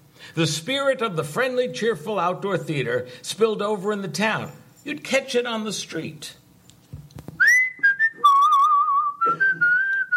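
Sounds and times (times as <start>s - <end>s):
speech: 0.2s - 6.4s
man whistling a short tune: 7.4s - 10.1s.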